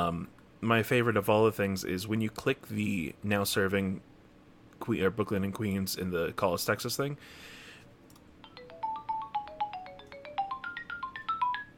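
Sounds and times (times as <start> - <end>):
speech: 0.0 - 4.1, 4.8 - 7.6
faint hum: 0.0 - 11.7
GameCube electronic ringtone melody: 8.4 - 11.7.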